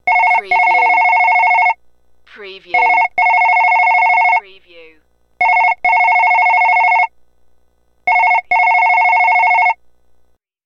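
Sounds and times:
telephone ringing: 0.0s - 1.8s, 2.7s - 4.4s, 5.4s - 7.1s, 8.1s - 9.8s.

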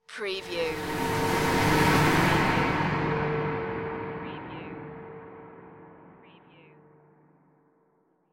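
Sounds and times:
spacecraft flyby drone: 0.6s - 6.3s.

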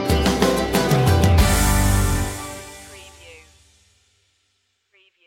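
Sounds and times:
open door musical sting: 0.1s - 3.0s.

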